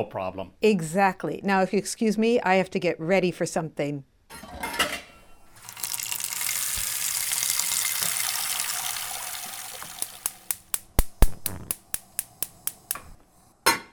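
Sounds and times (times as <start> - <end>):
speech: 0.0 - 4.6
metal pot clinking and knocking while handled: 5.6 - 10.8
water pouring from a tap into a metal pot: 5.6 - 10.8, 11.6 - 13.0.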